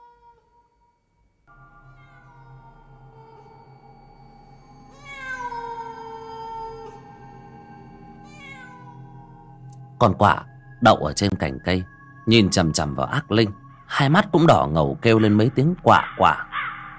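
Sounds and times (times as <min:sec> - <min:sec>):
cat meowing: 0:01.9 - 0:03.6, 0:04.9 - 0:07.1, 0:08.3 - 0:09.4
speech: 0:10.0 - 0:16.5.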